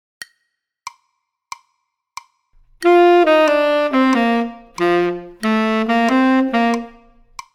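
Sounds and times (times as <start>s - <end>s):
tenor saxophone playing: 2.8s - 7.4s.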